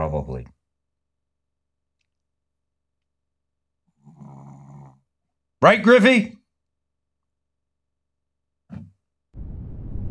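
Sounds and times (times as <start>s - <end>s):
speech: 0.1s - 0.6s, 5.6s - 6.4s
low rumbling snore: 4.0s - 5.0s.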